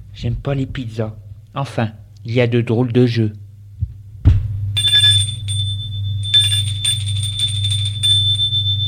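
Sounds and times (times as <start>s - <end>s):
speech: 0.2s - 3.4s
low hum: 3.5s - 8.8s
electronic doorbell buzzing: 4.7s - 8.8s.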